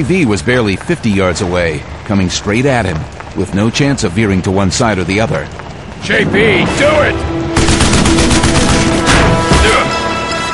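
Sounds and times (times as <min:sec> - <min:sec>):
speech: 0:00.0 - 0:07.4
machine gun fire: 0:07.6 - 0:09.7.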